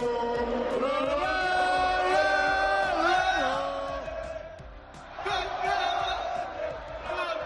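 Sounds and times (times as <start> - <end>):
large crowd of football fans chanting in unison in celebration: 0.2 - 7.4.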